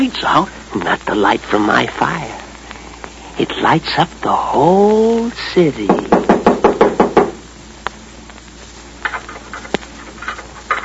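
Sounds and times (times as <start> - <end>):
speech: 0.2 - 2.4, 3.4 - 6.2
quick loud knocks on a door: 5.9 - 7.4
small scraping sounds: 8.6 - 10.8.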